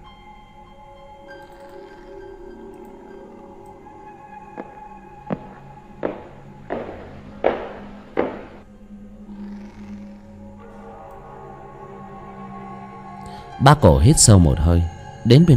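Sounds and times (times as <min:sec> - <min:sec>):
soft footsteps climbing a wooden staircase: 0:04.5 - 0:08.6
speech: 0:13.6 - 0:15.5.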